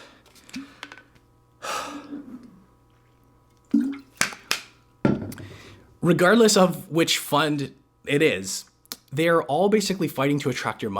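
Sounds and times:
person gasping to catch breath: 1.6s - 2.4s
speech: 6.0s - 10.9s.

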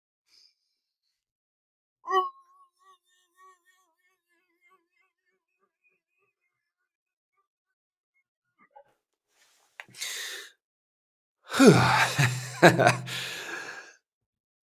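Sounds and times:
mouth sounds: 9.9s - 10.3s, 11.5s - 13.8s
sharp breath in: 10.0s - 10.5s, 11.5s - 13.8s
laughter: 11.5s - 13.8s
speech: 11.6s - 13.3s.

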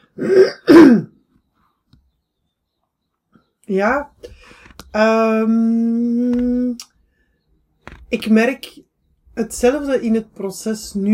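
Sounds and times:
person clearing throat: 0.1s - 1.2s
speech: 0.2s - 0.5s, 3.7s - 6.9s, 8.1s - 11.1s.

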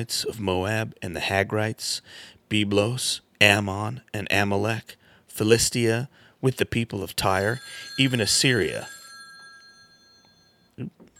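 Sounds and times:
speech: 0.0s - 9.0s, 10.8s - 11.0s
phone ringing with high electronic tones: 7.3s - 11.1s.

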